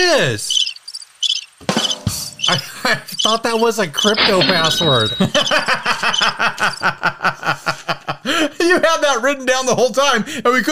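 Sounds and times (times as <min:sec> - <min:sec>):
speech: 0:00.1 - 0:00.6, 0:01.6 - 0:10.7
crickets chirping soundboard effect: 0:00.2 - 0:07.0
laughter: 0:02.5 - 0:03.2, 0:04.1 - 0:09.0.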